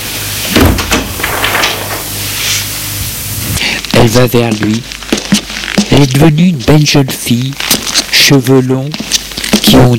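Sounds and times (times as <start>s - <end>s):
door swinging shut with a solid thud: 0.5s - 2.1s
speech: 4.0s - 5.0s, 5.9s - 9.9s.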